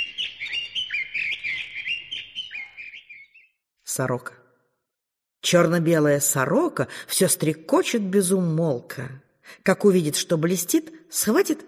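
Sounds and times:
nightingale singing: 0.0s - 3.6s
speech: 4.0s - 4.4s, 5.4s - 11.6s.

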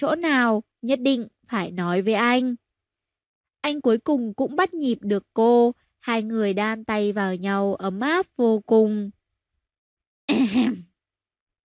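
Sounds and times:
speech: 0.0s - 2.6s, 3.6s - 9.2s, 10.5s - 10.8s
older man clearing his throat: 10.3s - 10.8s.

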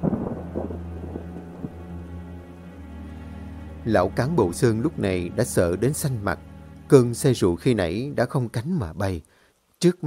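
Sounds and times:
low thunder rumbling: 0.0s - 6.4s
heavy rain: 0.0s - 10.0s
speech: 3.9s - 10.0s.

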